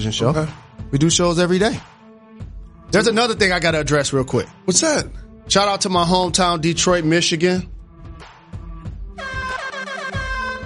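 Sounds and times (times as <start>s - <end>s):
speech: 0.0s - 1.9s, 2.9s - 7.8s
air horn blast: 9.2s - 10.6s.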